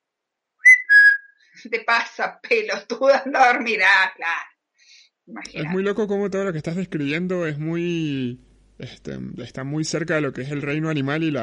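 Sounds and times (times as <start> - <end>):
person whistling a short two-note call: 0.6 - 1.3
speech: 1.6 - 4.5, 5.3 - 11.4.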